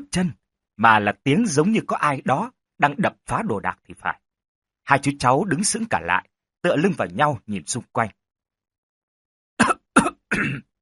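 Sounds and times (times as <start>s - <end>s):
speech: 0.0s - 4.2s, 4.9s - 8.2s
violent coughing: 9.6s - 10.7s.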